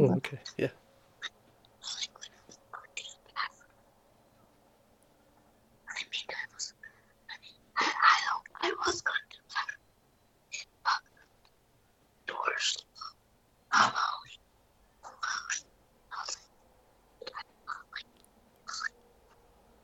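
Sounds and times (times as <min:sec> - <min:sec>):
boy whispering a story: 0:00.1 - 0:03.7, 0:05.9 - 0:09.8, 0:12.3 - 0:14.4, 0:15.1 - 0:16.5, 0:17.2 - 0:18.9
speech: 0:00.2 - 0:00.8.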